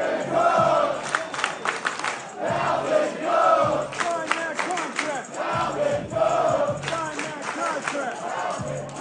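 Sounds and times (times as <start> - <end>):
large crowd chanting a football player's name at a team facility: 0.0 - 8.9
people clapping: 0.9 - 2.4, 3.8 - 5.3, 6.8 - 8.9.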